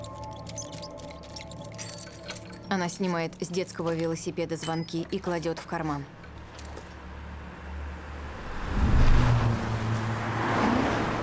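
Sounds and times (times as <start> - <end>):
speech: 2.7 - 6.2
two car engines rumbling pulling up to a house: 6.2 - 11.2.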